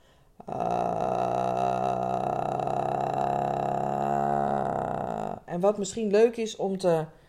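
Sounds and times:
person making low croaky frog-like vocal fry as a voice exercise: 0.4s - 5.6s
speech: 5.6s - 7.2s.

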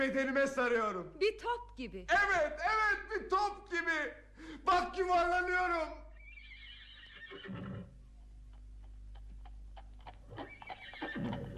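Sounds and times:
speech: 0.0s - 6.0s, 7.3s - 7.9s
horse neighing: 6.1s - 8.0s, 10.1s - 11.5s
horse hooves clip-clopping: 8.2s - 11.5s.

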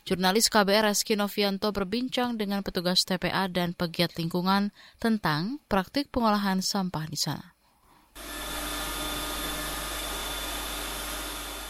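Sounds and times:
speech: 0.1s - 7.6s
waste-sorting machine roaring at a landfill: 8.2s - 11.6s.

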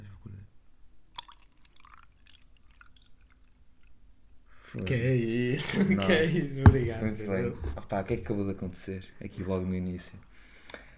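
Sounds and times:
water being poured with splashy trickles and drips: 1.1s - 4.0s
speech: 4.7s - 10.4s
laughter: 5.4s - 7.1s.

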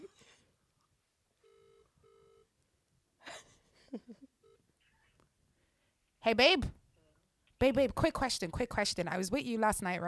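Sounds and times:
phone call ringback tone through a handset: 1.4s - 2.5s
speech: 6.2s - 6.8s, 7.6s - 10.0s.

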